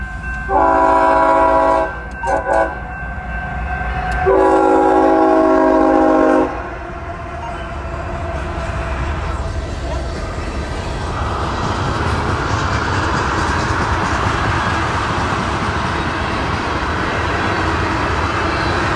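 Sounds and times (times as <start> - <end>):
horn of an intermodal oil freight train with ES-44 and AC-44 locomotives: 0.0 - 9.1
freight oil train passing: 0.0 - 18.9.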